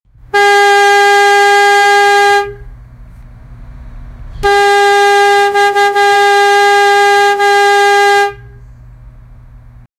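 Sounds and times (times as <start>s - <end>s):
air horn: 0.3s - 2.8s, 4.4s - 8.8s.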